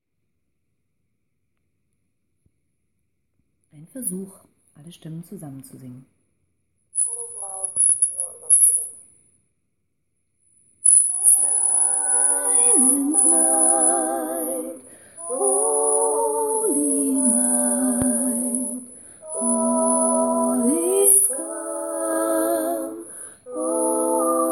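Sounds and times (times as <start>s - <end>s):
gospel choir singing with all voices: 10.9s - 24.5s.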